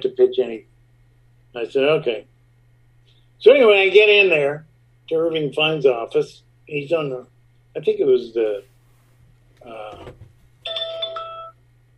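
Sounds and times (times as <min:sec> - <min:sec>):
speech: 0:00.2 - 0:00.7, 0:01.5 - 0:02.3, 0:03.4 - 0:08.7, 0:09.6 - 0:10.2
phone ringtone of bright electronic chime tones: 0:10.6 - 0:11.6.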